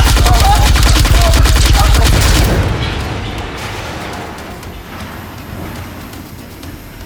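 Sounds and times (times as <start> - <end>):
giant robot's cannon firing: 0.0 - 4.8
deep rumbling echo: 0.0 - 6.2.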